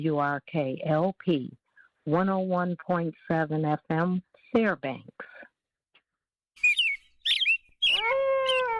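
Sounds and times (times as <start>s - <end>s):
speech: 0.0s - 5.4s
hoary marmot shrill whistle: 6.6s - 8.7s.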